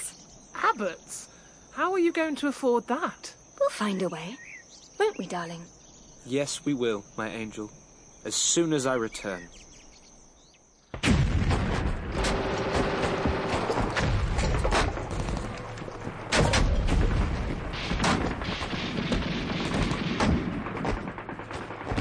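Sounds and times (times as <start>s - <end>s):
speech: 0.7s - 4.4s, 5.0s - 9.7s
battlefield artillery booms heard from a trench: 10.9s - 21.9s
battlefield gunfire heard from a trench: 10.9s - 21.9s.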